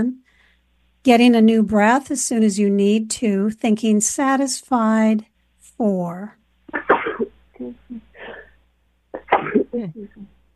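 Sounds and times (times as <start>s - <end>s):
speech: 0.0s - 0.2s, 1.0s - 6.9s, 9.4s - 10.3s
person sneezing: 6.7s - 8.5s, 9.2s - 9.8s.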